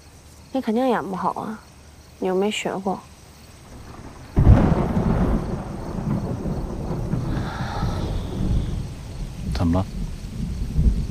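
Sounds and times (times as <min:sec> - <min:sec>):
speech: 0:00.5 - 0:03.1, 0:09.6 - 0:10.0
thunder crack and rumble before rain: 0:03.6 - 0:11.1.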